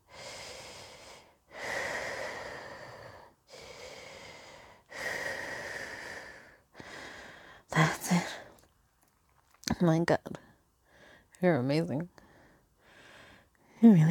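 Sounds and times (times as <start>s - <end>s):
person breathing slowly and deeply during a guided breathing exercise: 0.0s - 7.7s, 10.4s - 11.4s, 12.1s - 13.8s
speech: 9.8s - 10.4s, 11.4s - 12.2s, 13.8s - 14.0s.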